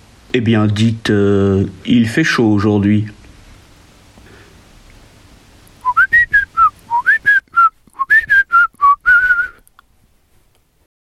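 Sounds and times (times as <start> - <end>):
speech: 0.3 - 3.2
person whistling imitation of magpie language: 5.8 - 9.7.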